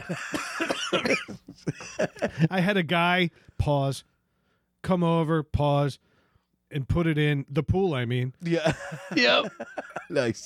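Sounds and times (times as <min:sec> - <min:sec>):
harsh raspy coughing fit: 0:00.0 - 0:02.5
laughter: 0:00.0 - 0:02.6, 0:08.5 - 0:10.4
speech: 0:00.1 - 0:04.1, 0:04.8 - 0:06.1, 0:06.7 - 0:10.4.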